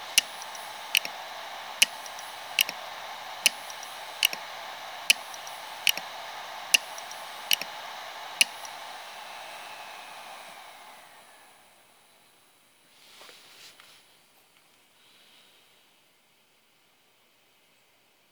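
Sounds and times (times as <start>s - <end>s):
hard drive read heads crashing with sharp clicks: 0.0s - 7.8s, 8.4s - 8.8s
hard drive whining hum: 0.0s - 12.4s.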